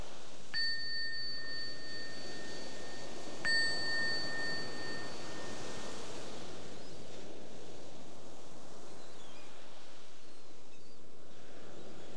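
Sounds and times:
soft steady wind- or surf-like noise: 0.0s - 12.1s
meditation bell ringing: 0.6s - 6.9s.

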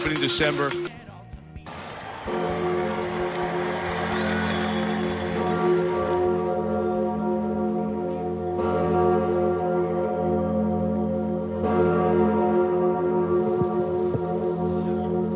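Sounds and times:
speech: 0.0s - 1.0s
large cathedral church bells ringing: 2.2s - 15.3s.

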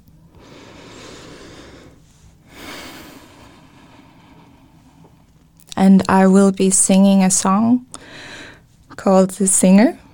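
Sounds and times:
deep nervous breath drawn by a singer before a song: 0.3s - 5.3s, 8.0s - 8.7s
speech: 5.8s - 8.1s, 9.0s - 10.0s.

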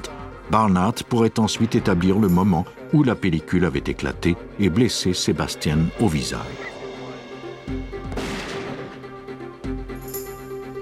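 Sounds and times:
speech: 0.5s - 6.8s
gun firing during a test firing: 8.0s - 9.1s.

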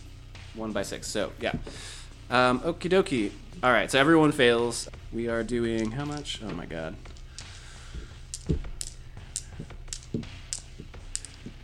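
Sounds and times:
speech: 0.6s - 7.1s, 8.5s - 8.7s
dice clicking together as they are sorted and counted by hand: 5.6s - 6.3s, 7.0s - 11.6s.

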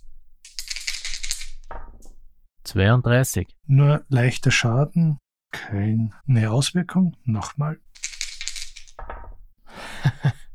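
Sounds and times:
two six-sided dice clattering across a hard tabletop: 0.4s - 2.2s, 8.0s - 9.4s
speech: 2.7s - 7.8s.

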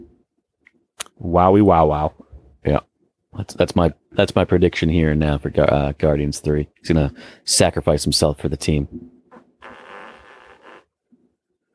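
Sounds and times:
speech: 1.2s - 9.2s
fart: 9.3s - 10.9s.

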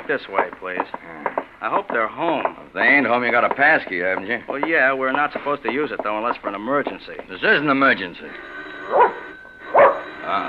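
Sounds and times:
speech: 0.1s - 9.2s, 10.3s - 10.4s
dog barking: 8.9s - 10.1s.

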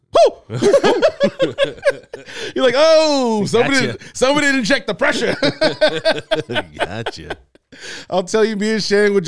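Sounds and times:
person imitating a startled yelp of someone using a bidet: 0.1s - 0.7s
laughter: 0.2s - 8.1s
speech: 0.5s - 1.9s, 2.6s - 9.2s.

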